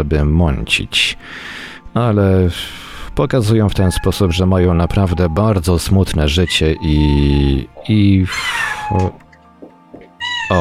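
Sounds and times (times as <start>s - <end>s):
speech: 0.0s - 9.2s
cat meowing: 3.7s - 5.5s, 6.2s - 7.1s, 8.3s - 9.2s, 10.2s - 10.5s.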